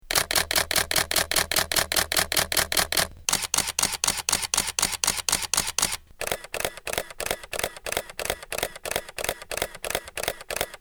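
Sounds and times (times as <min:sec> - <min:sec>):
Canon EOS camera shutter burst: 0:00.1 - 0:10.7.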